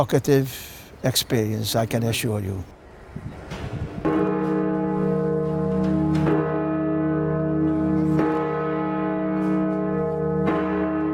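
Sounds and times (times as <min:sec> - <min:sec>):
speech: 0:00.0 - 0:03.4
large deep memorial bell tolling: 0:04.1 - 0:11.1.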